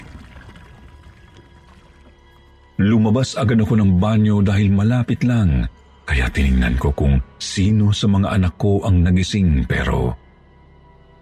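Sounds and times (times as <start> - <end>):
water pumped from a hand pump and poured into a container: 0.0 - 2.2
speech: 2.8 - 10.2.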